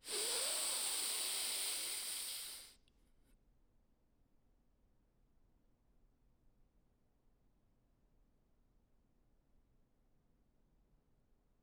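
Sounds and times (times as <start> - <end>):
deep inhale through the nose during a guided mindfulness breathing exercise: 0.0 - 2.8.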